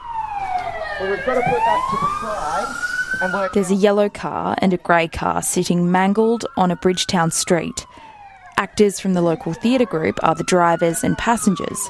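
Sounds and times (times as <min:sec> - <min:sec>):
wailing emergency vehicle siren at a staged car crash simulation: 0:00.0 - 0:11.8
speech: 0:01.0 - 0:11.8.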